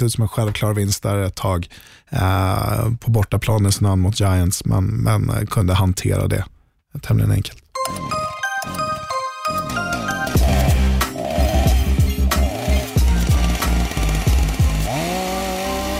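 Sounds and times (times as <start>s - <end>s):
speech: 0.0s - 8.8s
bright tinkling chime notes: 7.8s - 10.4s
power saw engine revving: 9.8s - 15.9s.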